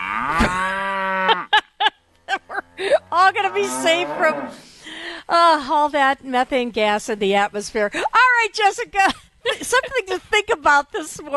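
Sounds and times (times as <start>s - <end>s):
cow mooing: 0.0s - 1.5s, 2.8s - 4.6s
speech: 3.4s - 4.7s, 5.3s - 11.3s.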